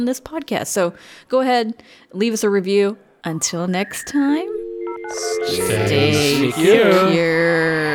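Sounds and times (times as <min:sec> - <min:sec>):
speech: 0:00.0 - 0:04.5, 0:05.1 - 0:07.8
rhythmic musical beat: 0:03.8 - 0:06.8.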